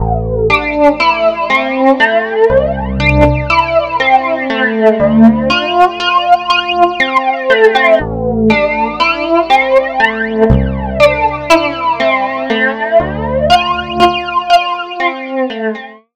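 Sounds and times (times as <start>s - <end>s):
wet flanged guitar: 0.0s - 16.1s.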